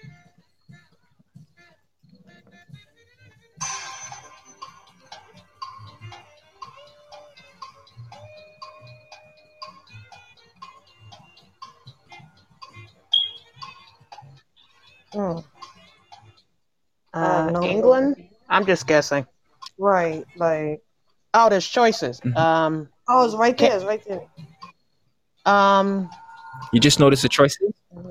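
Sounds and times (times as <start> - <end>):
countdown timer ticking: 3.6 - 28.0
electronic tones: 13.1 - 13.8, 25.5 - 28.0
speech: 17.2 - 24.4, 25.5 - 28.0.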